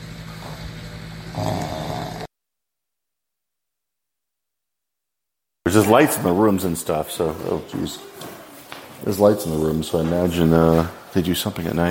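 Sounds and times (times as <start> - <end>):
raspy imitated snoring made by a voice: 1.3 - 2.3
speech: 5.7 - 8.4, 9.0 - 11.9.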